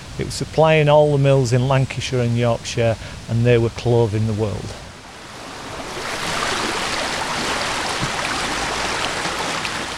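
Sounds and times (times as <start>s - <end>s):
speech: 0.2s - 4.8s
waterfall rushing beside a bobbin mill in the Lake District countryside, Cumbria: 4.8s - 9.9s.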